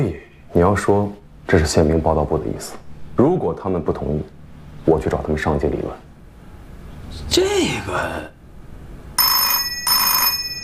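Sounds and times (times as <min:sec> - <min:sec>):
speech: 0:00.0 - 0:06.0, 0:07.1 - 0:08.3
telephone ringing: 0:09.2 - 0:10.6.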